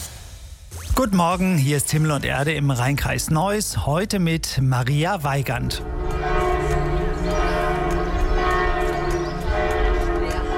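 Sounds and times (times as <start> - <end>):
speech: 1.0 - 6.0
church bells of a monastery pealing together in Germany: 5.2 - 10.5.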